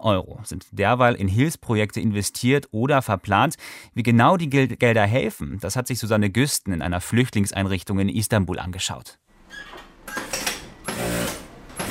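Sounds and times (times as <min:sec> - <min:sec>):
speech: 0:00.0 - 0:10.4
sewing machines rattling: 0:10.4 - 0:11.8.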